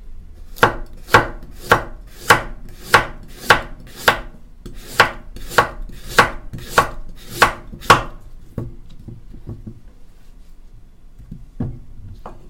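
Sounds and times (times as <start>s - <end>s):
knife chopping on a board: 0.5s - 8.2s.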